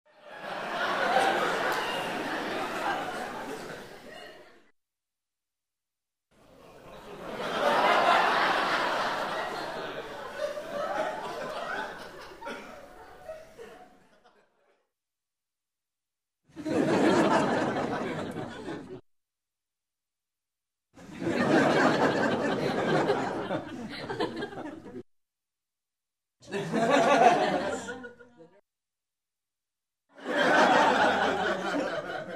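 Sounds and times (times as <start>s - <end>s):
crowd laughing in a room: 0.1s - 4.7s, 6.4s - 14.9s, 16.5s - 19.0s, 21.0s - 25.0s, 26.4s - 28.6s, 30.2s - 32.3s.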